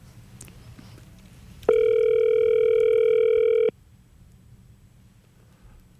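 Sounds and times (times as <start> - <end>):
faint low noise: 0.0 - 5.9
steady electronic ringback tone from an outgoing phone call in a Sydney studio: 1.7 - 3.7.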